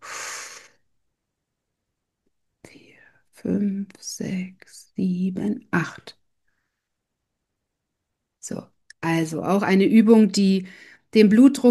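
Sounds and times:
slow breathy exhalation during a calming breathing exercise: 0:00.0 - 0:00.8
speech: 0:03.4 - 0:06.2, 0:08.4 - 0:11.6.

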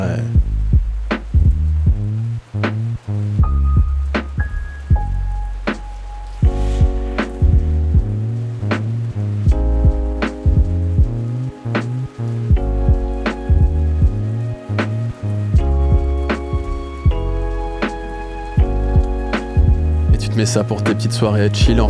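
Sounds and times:
mellow lo-fi track with relaxed drum beat and warm sustained keys: 0:00.0 - 0:21.8
soft steady patter of light rain: 0:00.0 - 0:21.8
speech: 0:20.4 - 0:21.8.

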